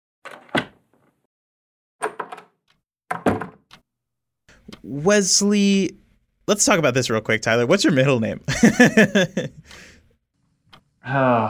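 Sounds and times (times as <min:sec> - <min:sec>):
door opening and shutting with clattering thumps: 0:00.2 - 0:01.2, 0:02.0 - 0:03.8
speech: 0:04.8 - 0:09.9, 0:11.0 - 0:11.4
laughter: 0:08.4 - 0:10.0.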